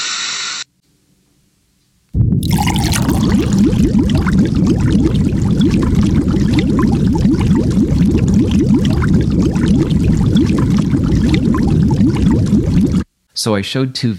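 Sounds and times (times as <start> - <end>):
marble fizzing in hydrochloric acid: 2.4 - 13.1
speech: 13.4 - 14.1.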